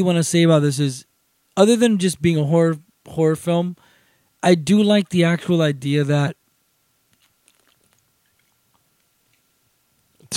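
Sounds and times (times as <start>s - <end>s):
speech: 0.0s - 3.8s, 4.4s - 6.4s
person sipping a drink: 7.2s - 8.8s.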